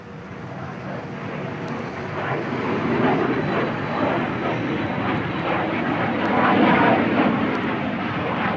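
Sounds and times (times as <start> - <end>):
jet airplane engine roaring as the aircraft passes: 0.0 - 8.5.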